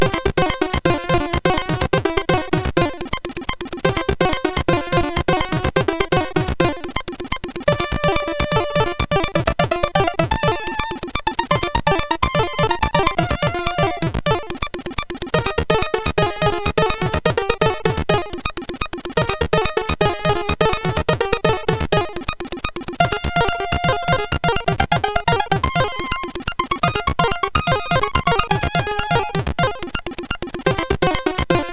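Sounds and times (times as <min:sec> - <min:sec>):
samba music on a MOS6581R3 sound chip: 0:00.0 - 0:31.7.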